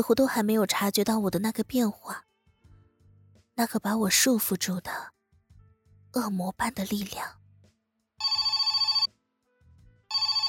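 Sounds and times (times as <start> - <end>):
speech: 0.0 - 2.3, 3.6 - 5.2, 6.1 - 7.4
telephone bell ringing in trilling bursts: 8.2 - 9.1, 10.1 - 10.4.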